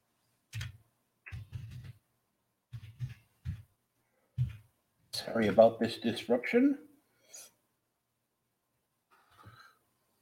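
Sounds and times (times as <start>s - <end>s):
typing on a computer keyboard: 0.5s - 2.0s, 2.7s - 3.6s
speech: 5.2s - 6.9s.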